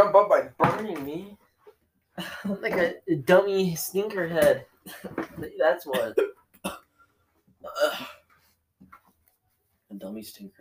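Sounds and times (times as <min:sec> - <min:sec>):
speech: 0:02.2 - 0:06.8, 0:07.7 - 0:08.2, 0:09.9 - 0:10.5
person hiccuping: 0:07.7 - 0:08.2.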